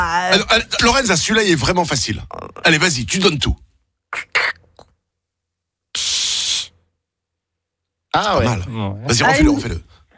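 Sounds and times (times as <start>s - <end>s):
speech: 0.0s - 4.4s, 8.1s - 9.9s
voice imitating a soda bottle being opened: 4.1s - 4.9s, 6.0s - 6.7s.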